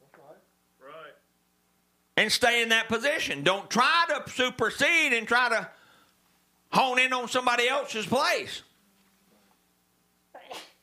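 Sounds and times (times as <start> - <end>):
speech: 2.2 - 5.8, 6.7 - 8.7
sneeze: 10.3 - 10.8.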